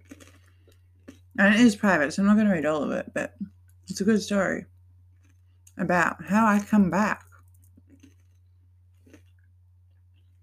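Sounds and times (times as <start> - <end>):
chewing of food with soft moist crunching: 0.0 - 1.4, 5.1 - 5.8, 6.4 - 10.4
steady low electrical hum: 0.0 - 10.4
speech: 1.4 - 4.7, 5.8 - 7.2.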